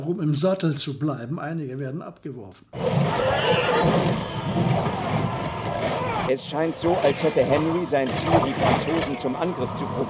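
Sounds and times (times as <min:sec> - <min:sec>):
speech: 0:00.0 - 0:05.3, 0:06.3 - 0:10.0
horses neighing and whinnying in panic after being struck by arrows in battle: 0:02.8 - 0:06.3
dense noisy background: 0:02.9 - 0:10.0.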